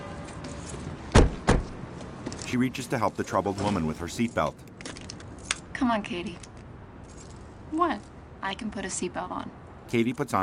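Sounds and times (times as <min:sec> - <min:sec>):
car front passenger door opening and closing: 0:01.1 - 0:01.8
speech: 0:02.5 - 0:04.7, 0:05.8 - 0:06.5, 0:07.7 - 0:10.4.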